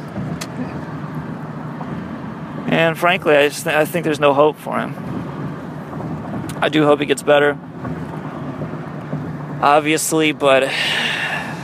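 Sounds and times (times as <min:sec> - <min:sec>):
car engine and road rumble while driving: 0:00.0 - 0:11.6
speech: 0:02.8 - 0:05.1, 0:06.6 - 0:07.7, 0:09.6 - 0:11.1.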